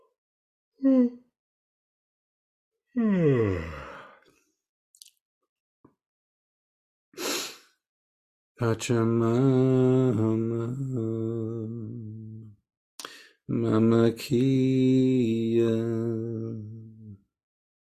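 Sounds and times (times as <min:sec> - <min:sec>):
long drawn-out voiced yawn: 0:00.8 - 0:01.2, 0:03.0 - 0:04.2
soft breathy exhales: 0:03.0 - 0:04.2
speech: 0:08.6 - 0:12.0, 0:13.5 - 0:16.7.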